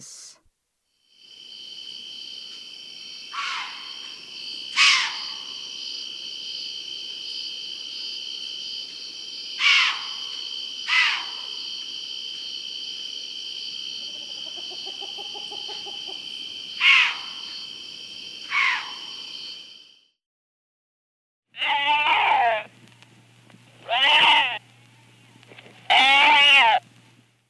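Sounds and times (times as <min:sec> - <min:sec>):
white-tailed deer in South America: 0:03.3 - 0:03.9, 0:04.7 - 0:05.5, 0:09.6 - 0:10.2, 0:10.8 - 0:11.5, 0:16.8 - 0:17.3, 0:18.5 - 0:19.0, 0:21.5 - 0:22.7, 0:23.8 - 0:24.7, 0:25.8 - 0:26.9.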